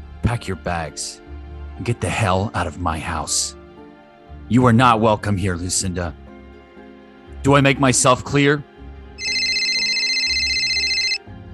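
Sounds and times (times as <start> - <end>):
speech: 0.3 - 3.6, 4.5 - 6.2, 7.4 - 8.7
cell phone ringing with a warbling electronic tone: 9.2 - 11.3.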